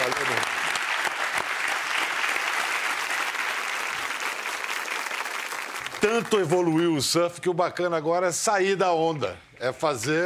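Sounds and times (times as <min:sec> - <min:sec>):
crowd applauding: 0:00.0 - 0:07.0
speech: 0:06.0 - 0:10.2.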